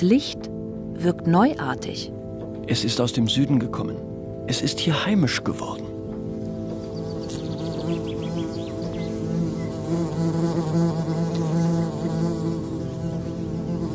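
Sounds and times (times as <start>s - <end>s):
speech: 0.0s - 5.9s
wasps swarming over a fig beneath a fig tree in a garden: 6.4s - 13.9s.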